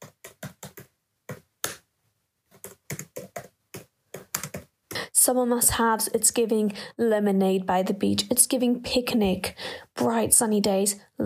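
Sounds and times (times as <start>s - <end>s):
computer keyboard typing: 0.0s - 1.8s, 2.5s - 4.7s
speech: 5.2s - 11.2s.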